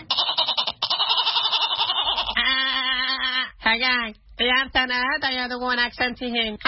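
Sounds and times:
goat bleating: 0.1s - 2.5s
speech: 3.8s - 6.6s.

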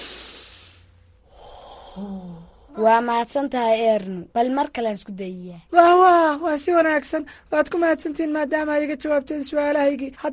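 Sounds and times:
deep breath taken as part of a calming exercise: 0.0s - 2.8s
speech: 2.0s - 10.3s.

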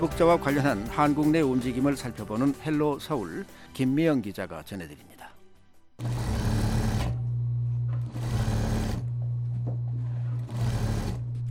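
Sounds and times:
speech: 0.0s - 5.1s
sewing machine running busily: 6.0s - 7.3s, 8.0s - 9.2s, 10.0s - 11.4s
steady low motor hum: 6.2s - 11.4s.

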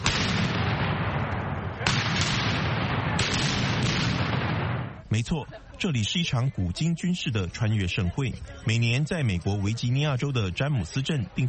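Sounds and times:
17th-century and American Revolutionary War era cannons firing at a Virginia museum reenactment: 0.0s - 5.0s
speech: 5.1s - 11.4s.

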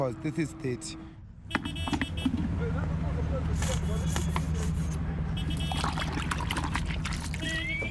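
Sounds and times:
speech: 0.0s - 1.8s
steady low engine rumble: 0.0s - 7.8s
street noise: 0.0s - 7.8s
bucket water splashing and sloshing while washing a taxi: 5.4s - 7.8s.

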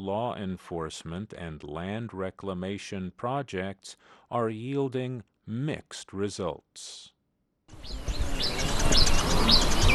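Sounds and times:
speech: 0.0s - 9.9s
birds chirping at a gold mining site by the Atewa Forest Reserve in Ghana: 7.7s - 9.9s.

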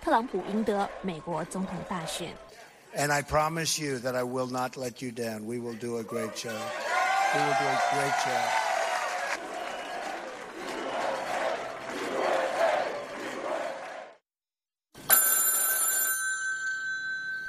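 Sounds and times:
loud crowd roaring and cheering: 0.0s - 2.9s, 6.0s - 14.2s
speech: 0.1s - 8.6s
telephone bell ringing with bright metallic jangle: 15.0s - 17.4s.

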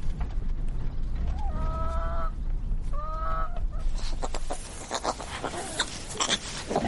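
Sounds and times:
busy barnyard rustle: 0.0s - 6.8s
chickens clucking and squawking on a farm: 1.4s - 6.8s.

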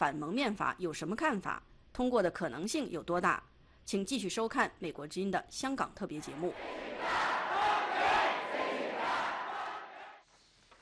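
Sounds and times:
speech: 0.0s - 7.2s
large protest crowd chanting: 6.2s - 10.2s.

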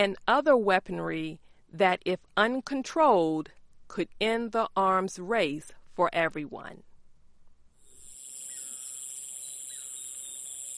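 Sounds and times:
speech: 0.0s - 6.9s
insects droning at night: 7.8s - 10.7s.

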